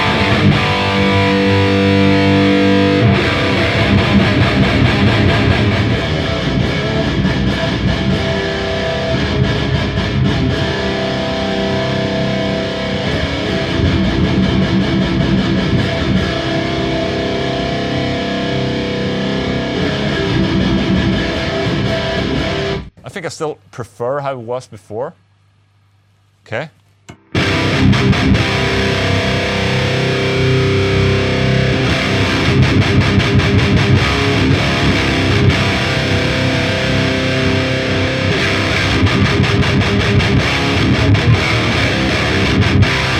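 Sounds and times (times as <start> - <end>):
heavily distorted electric guitar through preamp distortion with boosted bass EQ: 0.0 - 23.3, 26.5 - 43.1
speech: 23.4 - 25.3, 26.5 - 27.2.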